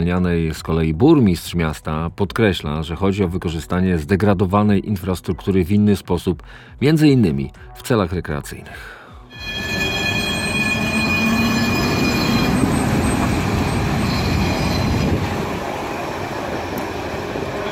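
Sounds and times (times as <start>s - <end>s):
speech: 0.0s - 9.7s
tram pulling away with a metallic rumble: 9.3s - 17.7s.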